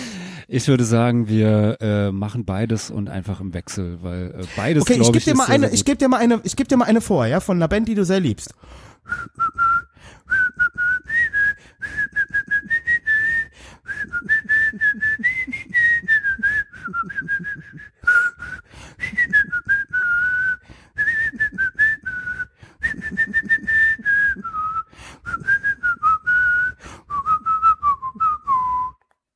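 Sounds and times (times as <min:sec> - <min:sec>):
speech: 0:00.5 - 0:10.2
person whistling a punk rock song melody: 0:04.9 - 0:05.8, 0:09.1 - 0:29.1.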